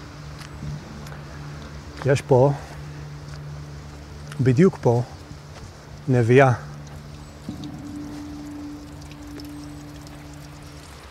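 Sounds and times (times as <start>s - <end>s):
speech: 2.0s - 2.7s, 4.4s - 5.2s, 6.1s - 6.7s
drinkable spring water gushing from a pipe in rock: 6.8s - 11.0s.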